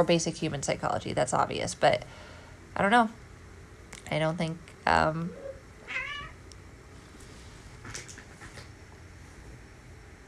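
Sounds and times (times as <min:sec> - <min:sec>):
speech: 0:00.0 - 0:03.2, 0:04.1 - 0:06.0
two cats yowling at each other: 0:05.3 - 0:06.4.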